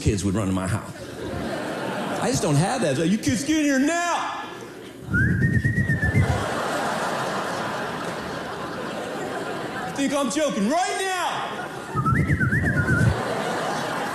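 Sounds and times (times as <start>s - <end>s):
speech: 0.0s - 1.4s, 2.2s - 4.4s, 10.0s - 11.1s
laughter: 0.9s - 3.0s, 4.5s - 14.1s
adult's weak breathy whistle attempting to call kids in: 5.1s - 6.3s.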